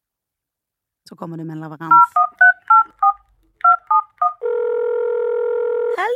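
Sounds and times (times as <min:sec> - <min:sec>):
speech: 0:01.1 - 0:02.3
telephone touch-tone beeps as a number is keyed in: 0:01.9 - 0:04.6
telephone dial tone: 0:03.9 - 0:06.0.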